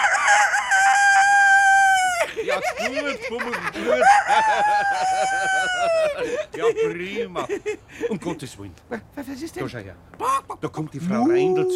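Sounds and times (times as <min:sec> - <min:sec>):
rooster crowing: 0:00.0 - 0:02.3, 0:03.8 - 0:06.3
laughter: 0:02.0 - 0:09.0
speech: 0:02.6 - 0:11.7.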